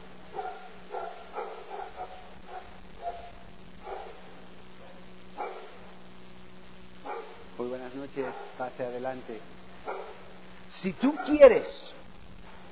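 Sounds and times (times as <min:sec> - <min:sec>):
steady low electrical hum: 0:00.0 - 0:12.7
dogs barking angrily at a visitor: 0:00.2 - 0:05.9, 0:07.0 - 0:08.8, 0:09.8 - 0:10.4, 0:11.0 - 0:12.1
speech: 0:08.2 - 0:10.1, 0:10.7 - 0:12.0.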